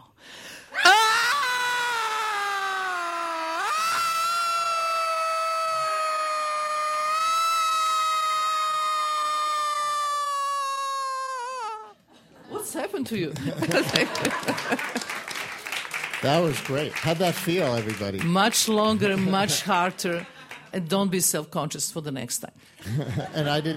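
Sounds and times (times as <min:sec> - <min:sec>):
group of people screaming together after a breathing exercise: 0:00.7 - 0:11.9
speech: 0:12.8 - 0:15.2, 0:16.2 - 0:23.7
laughter: 0:13.3 - 0:15.5, 0:18.9 - 0:20.7, 0:22.8 - 0:23.7.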